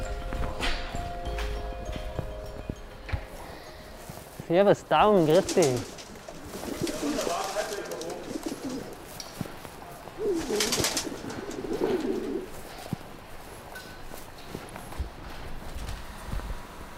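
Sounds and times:
rustling: 0:00.0 - 0:16.8
speech: 0:04.5 - 0:05.9
pigeon cooing: 0:05.3 - 0:13.0.

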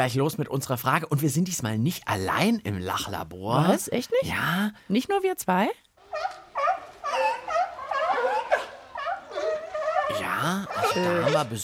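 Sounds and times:
speech: 0:00.0 - 0:06.4, 0:10.4 - 0:11.6
seals barking over loudspeakers: 0:06.1 - 0:11.6.

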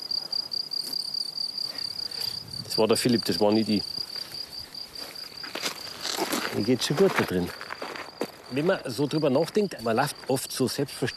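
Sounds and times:
field cricket chirping at its burrow in sandy soil in Bavaria: 0:00.0 - 0:11.1
speech: 0:02.8 - 0:04.0, 0:06.6 - 0:07.6, 0:08.5 - 0:11.1
rustling and scraping from tickling the cricket out of its hole: 0:04.0 - 0:08.7.

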